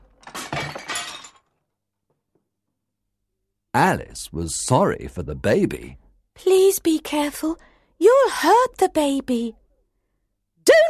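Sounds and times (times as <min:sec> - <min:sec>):
thrown pots and jars smashing: 0:00.0 - 0:01.6
speech: 0:03.8 - 0:09.6.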